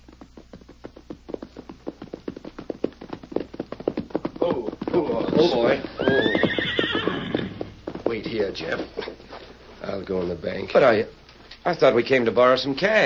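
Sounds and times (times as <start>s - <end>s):
hooves of a ridden horse clip-clopping: 0.0s - 13.0s
horse whinnying: 4.4s - 7.8s
speech: 5.0s - 6.3s, 8.2s - 9.1s, 10.0s - 13.0s.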